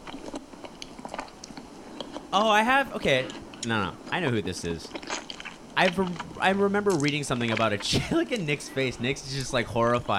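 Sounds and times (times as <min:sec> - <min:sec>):
biting and chewing crunchy sticky honeycomb treat: 0:00.0 - 0:02.4, 0:03.1 - 0:08.6
speech: 0:02.3 - 0:05.0, 0:05.8 - 0:10.1.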